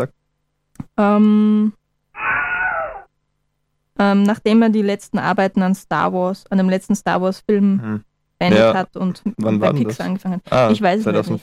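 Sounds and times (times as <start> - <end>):
speech: 1.0 - 1.8, 4.0 - 11.4
Wilhelm scream sound effect: 2.2 - 3.1.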